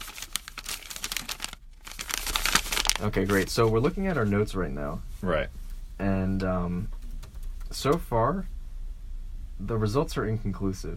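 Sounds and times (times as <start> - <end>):
paper sheets being shuffled: 0.0 - 4.4
speech: 3.0 - 7.0, 7.7 - 8.5, 9.6 - 10.9.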